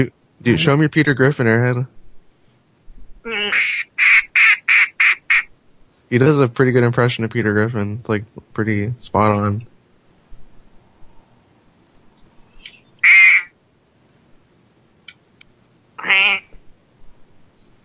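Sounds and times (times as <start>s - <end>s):
speech: 0.0s - 2.0s, 3.2s - 4.1s, 6.1s - 9.7s
duck quacking: 3.3s - 5.5s, 13.0s - 13.5s, 16.0s - 16.6s.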